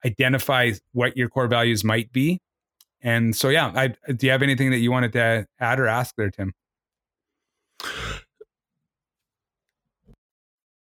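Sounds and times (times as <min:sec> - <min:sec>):
speech: 0:00.0 - 0:06.6
loud throat clearing: 0:07.8 - 0:08.4.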